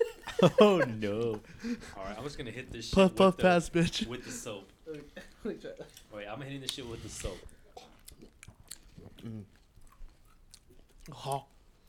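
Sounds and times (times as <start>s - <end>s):
laughter: 0.0s - 4.5s
speech: 0.4s - 7.6s, 9.2s - 9.6s, 11.1s - 11.5s
chewing sesame-seeded Japanese beef jerky: 5.3s - 11.8s.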